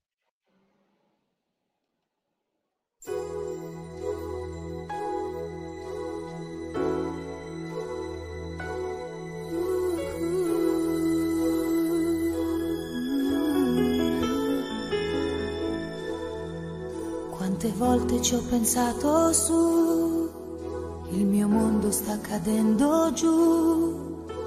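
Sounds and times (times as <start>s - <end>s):
bright chiming bell-like tones: 3.0s - 20.8s
instrumental intro of an Italian pop song: 3.1s - 24.4s
speech: 17.6s - 20.1s, 21.9s - 24.0s.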